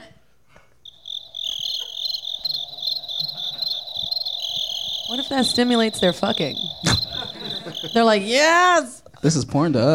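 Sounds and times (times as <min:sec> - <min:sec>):
person imitating cricket chirps into a microphone: 0:00.9 - 0:08.3
speech: 0:05.2 - 0:07.0, 0:07.8 - 0:09.9.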